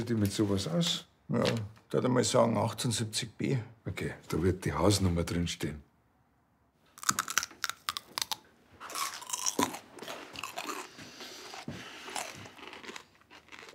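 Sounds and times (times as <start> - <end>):
speech: 0.0 - 5.9
loud crunchy chewing: 7.0 - 13.7.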